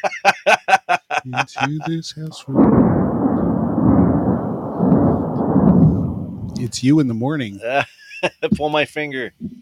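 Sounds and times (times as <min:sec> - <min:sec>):
laughter: 0:00.0 - 0:02.5, 0:07.6 - 0:08.5
speech: 0:01.2 - 0:03.3, 0:06.6 - 0:09.5
deep continuous rolling thunder: 0:02.4 - 0:07.0.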